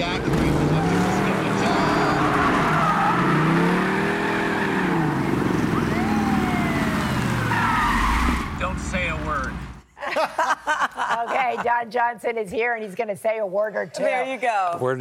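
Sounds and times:
tires squealing and skidding in a car chase: 0:00.0 - 0:09.7
car engines roaring and revving in a car chase: 0:00.0 - 0:09.8
dense continuous traffic noise: 0:00.0 - 0:09.9
laughter: 0:10.0 - 0:11.9
speech: 0:11.8 - 0:14.9.

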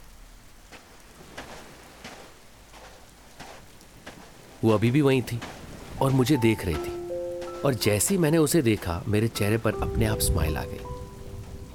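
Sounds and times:
heavy rain pouring: 0:00.0 - 0:11.7
speech: 0:04.6 - 0:07.0, 0:07.6 - 0:11.0.

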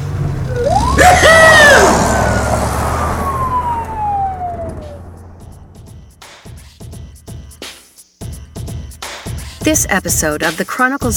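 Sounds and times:
engine rumble: 0:00.0 - 0:06.1
siren whooping and wailing: 0:00.4 - 0:05.7
speech: 0:09.7 - 0:11.1.

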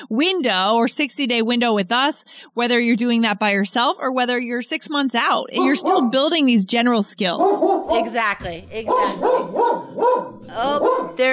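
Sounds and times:
speech: 0:00.0 - 0:11.3
dog barking: 0:05.6 - 0:06.2, 0:07.4 - 0:08.2, 0:08.9 - 0:11.3.

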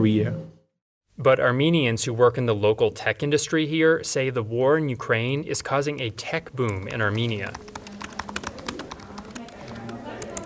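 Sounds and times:
speech: 0:00.0 - 0:00.5, 0:01.2 - 0:07.8
typing on computer keyboards: 0:06.6 - 0:10.4
faint murmur of voices in a room: 0:07.3 - 0:10.4.

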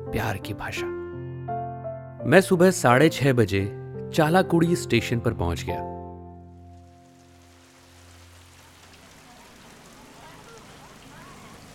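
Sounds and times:
speech: 0:00.1 - 0:01.0, 0:02.2 - 0:06.0
heavy rain falling: 0:06.7 - 0:11.7.

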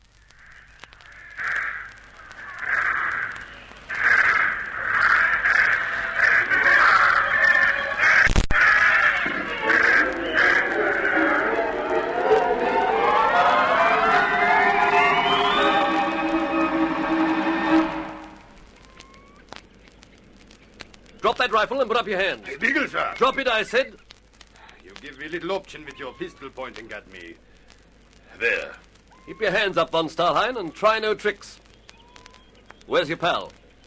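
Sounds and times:
flock of birds released into the air cawing: 0:00.1 - 0:33.8
rising tonal sound: 0:09.3 - 0:19.0
speech: 0:21.6 - 0:24.0, 0:25.2 - 0:27.5, 0:28.4 - 0:31.5, 0:32.9 - 0:33.6.

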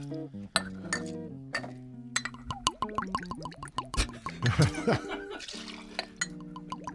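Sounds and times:
light glassy clinks: 0:00.6 - 0:02.6, 0:06.0 - 0:06.9
vodka glugging out of a frosted glass bottle: 0:02.2 - 0:04.7, 0:05.4 - 0:06.9
laughter: 0:04.0 - 0:05.5.

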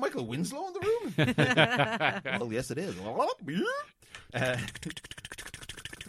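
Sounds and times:
speech: 0:00.2 - 0:05.1
laughter: 0:01.1 - 0:02.5
man's voice imitating microphone hum and buzz: 0:04.4 - 0:06.0.

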